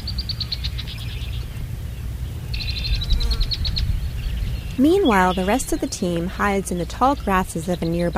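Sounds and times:
red knots and ruddy turnstones calling with high piping chirps: 0.0s - 8.1s
steady low rumble on a beach: 0.2s - 8.1s
speech: 4.8s - 8.1s.

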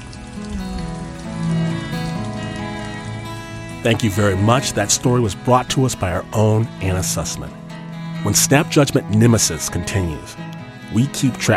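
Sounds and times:
heavy rain pouring: 0.0s - 11.5s
sustained low musical tones: 0.0s - 11.5s
speech: 3.8s - 7.6s, 8.2s - 11.5s.

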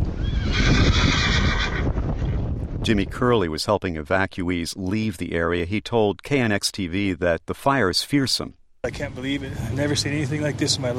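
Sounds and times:
horses neighing and whinnying during a wildfire evacuation: 0.0s - 2.4s
speech: 2.9s - 10.9s.

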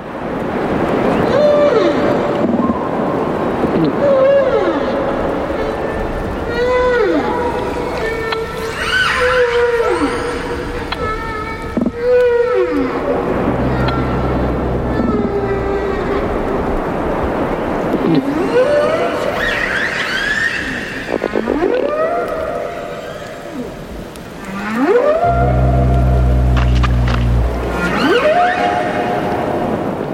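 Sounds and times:
humpback and killer whale calls underwater: 1.0s - 30.1s
deep rumbling drone: 12.6s - 17.2s, 24.8s - 29.3s.

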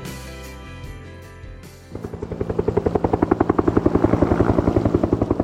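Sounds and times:
helicopter passing overhead with rotor thumping: 1.9s - 5.4s.

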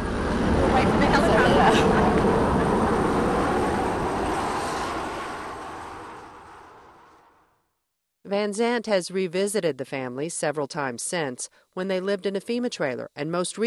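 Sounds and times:
helicopter passing overhead with throbbing rotor rumble: 0.0s - 7.2s
tanks passing by in the aftermath of a storm: 0.0s - 7.6s
speech: 8.4s - 13.6s.

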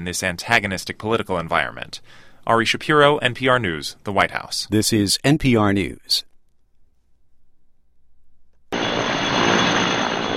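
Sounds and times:
speech: 0.0s - 6.3s
helicopters dumping water and fire-retardant on a wildfire near Boulder, Colorado: 8.8s - 10.3s.

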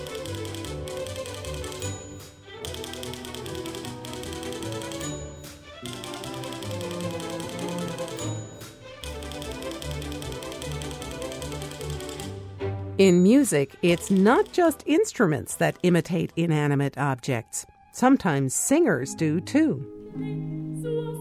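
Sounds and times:
typewriter keys clacking: 0.0s - 12.3s, 13.1s - 15.1s
lively orchestral accompaniment: 0.0s - 21.1s
typewriter bell-like dings: 1.8s - 2.5s, 4.9s - 5.7s, 7.9s - 9.0s
speech: 13.0s - 20.6s.

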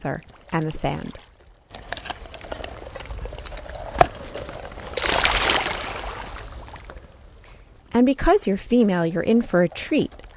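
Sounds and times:
speech: 0.0s - 1.2s, 7.9s - 10.2s
small waves lapping on a sandy beach: 0.0s - 10.3s
fuller wash of surf: 1.7s - 8.0s.

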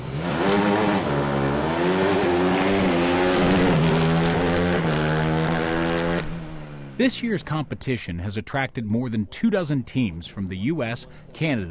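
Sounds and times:
open-wheeled Indy-style hybrid race car accelerating on gas engine: 0.0s - 7.3s
speech: 7.0s - 11.6s.

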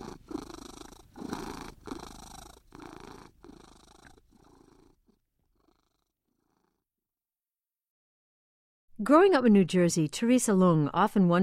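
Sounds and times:
cat purring: 0.0s - 6.9s
speech: 9.0s - 11.4s.

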